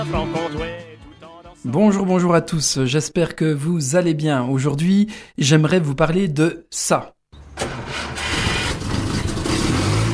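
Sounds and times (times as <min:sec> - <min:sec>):
speech: 0:01.6 - 0:07.7
old car engine cranking, catching and revving: 0:07.5 - 0:10.1.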